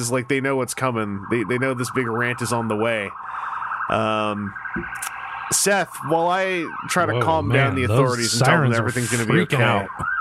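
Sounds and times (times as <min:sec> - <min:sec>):
emergency vehicle siren wailing: 0:00.0 - 0:10.1
speech: 0:00.0 - 0:10.1.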